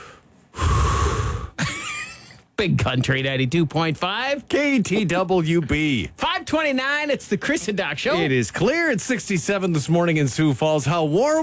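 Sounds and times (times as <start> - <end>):
deep breath drawn in sharply and loudly: 0.0 - 1.6
speech: 2.6 - 11.4.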